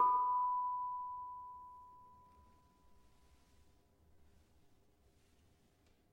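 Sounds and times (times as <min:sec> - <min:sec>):
tuned gamelan barung note: 0:00.0 - 0:02.3.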